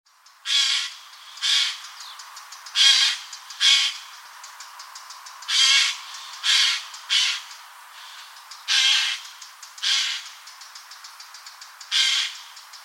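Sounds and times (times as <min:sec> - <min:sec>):
Eurasian jay Garrulus glandarius uttering raspy screeches: 0:00.5 - 0:01.8, 0:02.8 - 0:04.0, 0:05.5 - 0:09.2, 0:09.8 - 0:10.3, 0:11.9 - 0:12.4.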